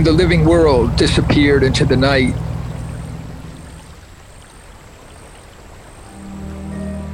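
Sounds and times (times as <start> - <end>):
speech: 0.0 - 2.5
low boat motor humming: 0.0 - 7.1
rippling splashing river water at night: 0.0 - 7.1.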